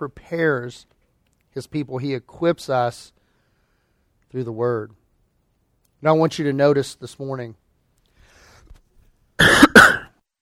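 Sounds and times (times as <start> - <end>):
speech: 0.0 - 1.0, 1.6 - 3.2, 4.3 - 5.0, 6.0 - 7.6
person giving a sermon coughing: 9.4 - 10.2.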